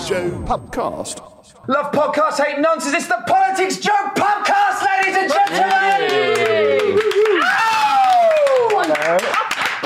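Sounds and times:
speech: 0:00.1 - 0:07.6
rapid hand clapping: 0:05.2 - 0:09.8.

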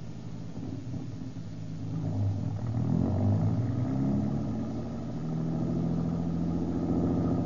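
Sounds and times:
car engine revving and pulling away: 0:01.7 - 0:07.4.

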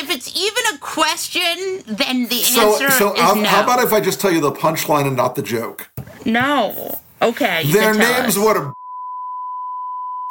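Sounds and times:
speech: 0:00.3 - 0:08.8
censor beep: 0:08.7 - 0:10.3.

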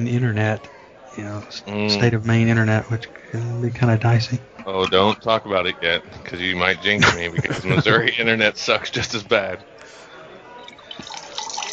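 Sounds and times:
speech: 0:00.0 - 0:10.0
laughter: 0:06.7 - 0:09.6
liquid pouring into a cup: 0:10.6 - 0:11.7.

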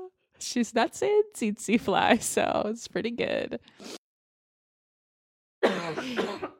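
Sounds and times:
speech: 0:00.5 - 0:04.0
person coughing: 0:05.7 - 0:06.5.

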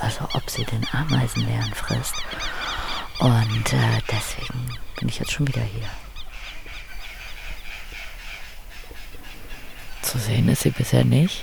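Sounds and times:
crows cawing in a forest across from a lake: 0:00.0 - 0:11.4
steady outdoor hiss: 0:00.0 - 0:11.4
speech: 0:00.1 - 0:06.0, 0:10.2 - 0:11.4.

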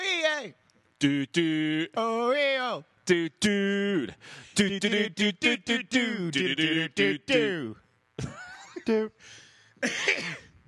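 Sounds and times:
speech: 0:00.4 - 0:10.4
hoarse raspy cough: 0:09.8 - 0:10.5.

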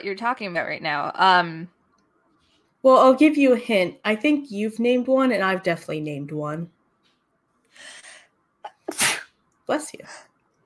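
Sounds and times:
speech: 0:00.0 - 0:01.8, 0:02.8 - 0:06.8, 0:09.7 - 0:10.3
person sneezing: 0:08.7 - 0:09.4.

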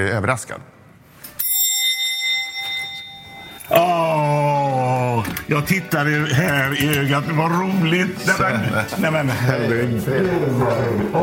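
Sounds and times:
speech: 0:00.0 - 0:00.8, 0:05.5 - 0:11.2
doorbell ringing with a bright metallic chime: 0:01.4 - 0:04.6
laughter: 0:07.7 - 0:11.2.

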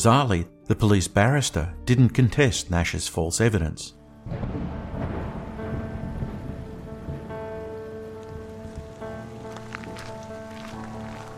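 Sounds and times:
speech: 0:00.0 - 0:04.8
heavy rain: 0:04.3 - 0:11.3.

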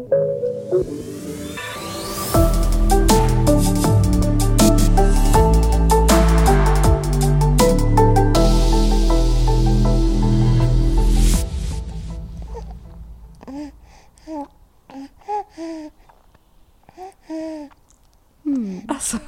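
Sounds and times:
speech: 0:00.0 - 0:01.2
loud musical passage: 0:00.8 - 0:14.1
infant babbling and gasping: 0:12.3 - 0:17.9, 0:18.5 - 0:19.2.

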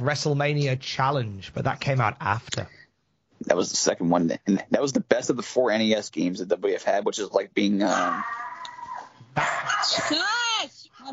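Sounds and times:
speech: 0:00.0 - 0:02.8, 0:03.4 - 0:08.5, 0:09.4 - 0:10.4
dog barking: 0:09.4 - 0:10.1.

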